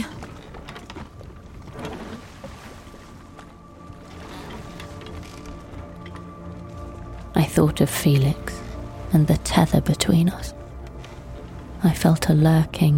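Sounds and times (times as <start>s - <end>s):
small boat engine hum: 0.0s - 12.9s
splashing wash of a small boat churning through water: 0.0s - 12.9s
speech: 7.4s - 10.6s, 11.8s - 12.9s.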